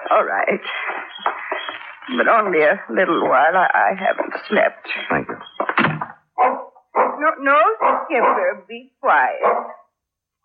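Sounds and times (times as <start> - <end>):
speech: 0.1 - 1.3, 2.1 - 5.3, 7.4 - 9.8
old dog barking harshly: 6.4 - 9.9.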